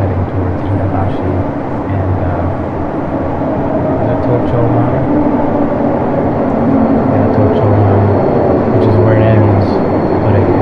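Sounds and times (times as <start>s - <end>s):
JR train arriving at a Japanese railway station platform, low rumble: 0.0s - 10.6s
faint humming tones of an arriving train: 0.0s - 10.6s.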